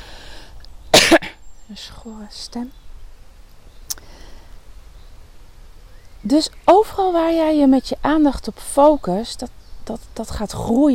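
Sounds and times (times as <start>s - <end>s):
person coughing: 0.9s - 1.4s
speech: 1.1s - 2.8s, 6.2s - 10.9s.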